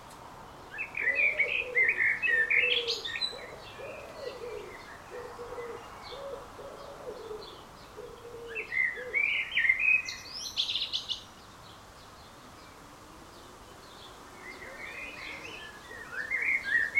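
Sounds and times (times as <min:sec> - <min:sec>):
bird cooing softly: 0:00.6 - 0:10.1, 0:12.6 - 0:16.9
common blackbird Turdus merula singing: 0:00.7 - 0:11.5, 0:13.8 - 0:16.9.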